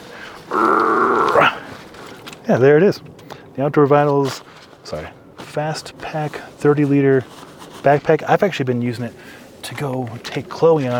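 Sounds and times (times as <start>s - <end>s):
speech: 0.5s - 0.8s, 2.5s - 10.9s
dog growling: 0.5s - 1.7s.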